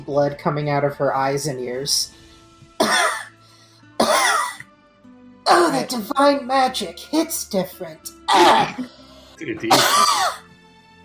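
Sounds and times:
speech: 0:00.0 - 0:02.3, 0:05.5 - 0:10.4
person coughing hard: 0:02.8 - 0:03.3, 0:04.0 - 0:04.6, 0:08.3 - 0:08.9, 0:09.5 - 0:10.4.

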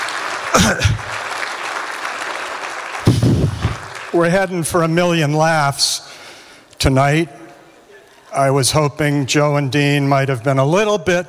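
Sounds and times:
audience applause at an awards evening: 0:00.0 - 0:04.3
speech: 0:00.6 - 0:01.1, 0:04.1 - 0:06.1, 0:06.8 - 0:07.4, 0:08.3 - 0:11.2.

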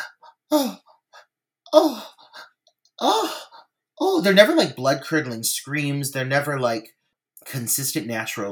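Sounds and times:
voice imitating panicked gasps of women in dubbed horror-film dialogue: 0:00.0 - 0:03.7
speech: 0:00.5 - 0:00.8, 0:01.7 - 0:02.2, 0:04.2 - 0:08.5.

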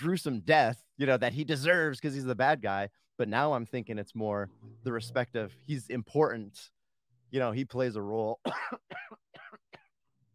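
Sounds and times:
speech: 0:00.0 - 0:09.2
person coughing harshly: 0:08.4 - 0:09.9.

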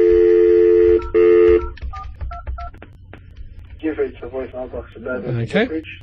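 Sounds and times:
phone call tones: 0:00.0 - 0:02.7
short dual-pitch phone dialing beeps: 0:00.0 - 0:02.7
speech: 0:04.4 - 0:06.0.

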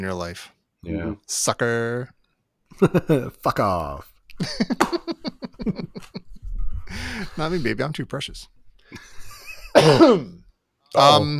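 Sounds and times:
speech: 0:00.0 - 0:06.2, 0:06.9 - 0:09.1, 0:09.8 - 0:11.3
laughter: 0:04.4 - 0:07.8, 0:08.9 - 0:09.8
loud throaty cough: 0:09.6 - 0:10.4.

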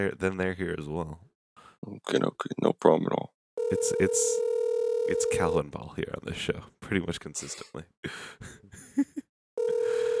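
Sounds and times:
speech: 0:00.0 - 0:04.5, 0:05.1 - 0:09.2
telephone ringing with a steady electronic tone: 0:03.6 - 0:05.4, 0:09.6 - 0:10.1.

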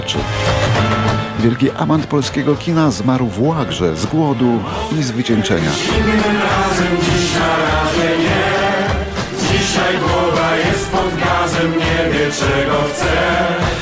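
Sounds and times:
full band accompaniment with a steady rhythm: 0:00.0 - 0:02.6, 0:04.8 - 0:13.8
speech: 0:01.4 - 0:08.6, 0:09.6 - 0:13.8
man singing a lively upbeat song: 0:04.7 - 0:13.8.

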